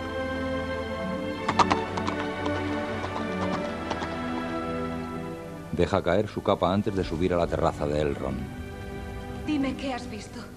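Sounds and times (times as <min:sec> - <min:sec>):
sustained music: 0:00.0 - 0:10.5
horse hoofbeats galloping across a bridge: 0:01.4 - 0:05.0
speech: 0:05.8 - 0:08.6, 0:09.5 - 0:10.5.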